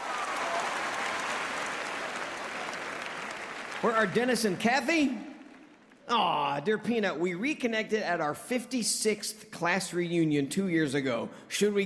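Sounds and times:
audience applause: 0.0s - 6.0s
speech: 3.8s - 5.3s, 6.1s - 11.8s.

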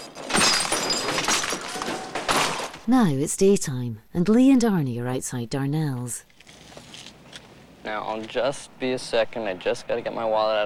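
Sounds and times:
hammer smashing a car radio out of the dashboard: 0.0s - 2.8s
speech: 2.9s - 6.3s, 7.8s - 10.6s.

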